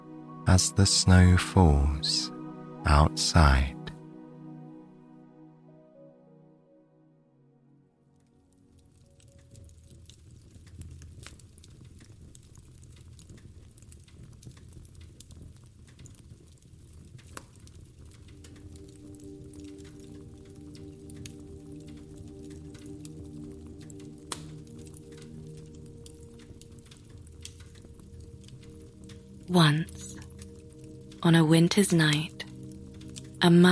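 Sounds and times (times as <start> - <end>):
crackling fireplace: 0.0 - 4.7, 8.0 - 33.6
soft musical tone: 0.0 - 9.7, 18.3 - 33.6
speech: 0.5 - 3.8, 31.8 - 32.3, 33.4 - 33.6.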